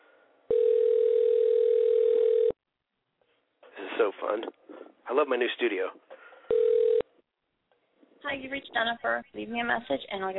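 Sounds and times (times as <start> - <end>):
steady mid-pitched telephone tone while placing a call: 0.5 - 2.6, 6.5 - 7.1
speech: 4.2 - 6.1, 8.2 - 10.3.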